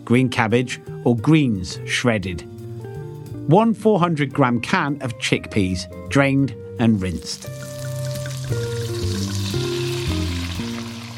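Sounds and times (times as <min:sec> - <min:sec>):
speech: 0:00.0 - 0:02.5, 0:03.4 - 0:07.7, 0:08.5 - 0:08.7
cumin seeds and onion frying in oil in a frying pan over low heat: 0:07.1 - 0:11.1.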